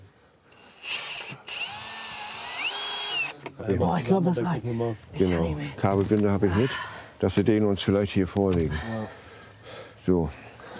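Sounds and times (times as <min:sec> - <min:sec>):
power drill drilling into material: 0:00.5 - 0:03.4
speech: 0:03.6 - 0:09.2, 0:10.1 - 0:10.5.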